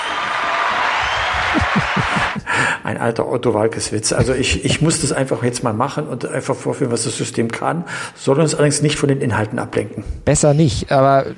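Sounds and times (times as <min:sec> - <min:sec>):
crowd applause sound effect: 0:00.0 - 0:02.5
laughter: 0:00.9 - 0:02.7, 0:04.2 - 0:05.2
speech: 0:01.8 - 0:11.3.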